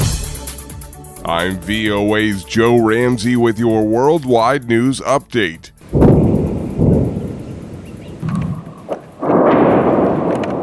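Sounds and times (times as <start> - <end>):
speech: 1.2 - 5.7
explosions from airstrikes: 5.8 - 10.6
low rumble: 5.8 - 10.6.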